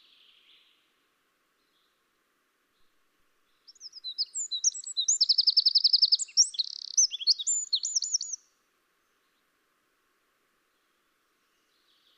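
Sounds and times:
Eurasian wren Troglodytes troglodytes singing: 3.5s - 8.5s.

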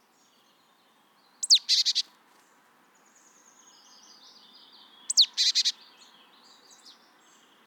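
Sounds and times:
marsh tit Poecile palustris calling: 1.4s - 2.1s, 5.0s - 6.0s.

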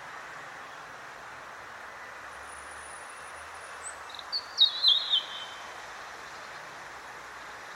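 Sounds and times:
background hiss: 0.0s - 7.7s
European robin Erithacus rubecula singing whistled phrase: 4.3s - 5.6s.

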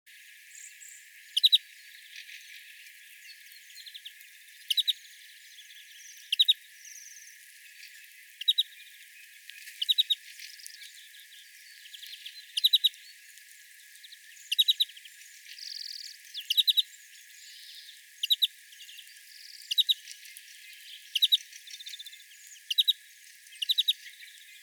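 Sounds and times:
European greenfinch Chloris chloris sharp chirps: 1.3s - 1.7s, 4.7s - 5.0s, 6.1s - 6.6s, 8.4s - 8.7s, 9.8s - 10.2s, 11.8s - 13.0s, 14.5s - 14.9s, 15.7s - 16.9s, 17.6s - 18.5s, 19.6s - 20.1s, 21.0s - 23.0s, 23.6s - 24.1s.

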